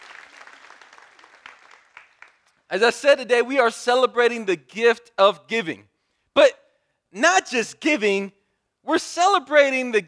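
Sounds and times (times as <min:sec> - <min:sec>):
church congregation applauding: 0:00.0 - 0:02.7
speech: 0:02.7 - 0:10.0.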